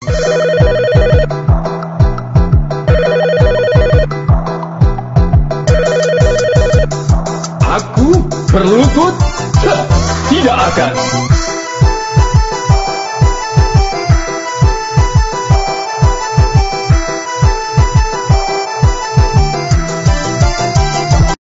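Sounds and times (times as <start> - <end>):
office telephone hold music: 0.0 - 21.4.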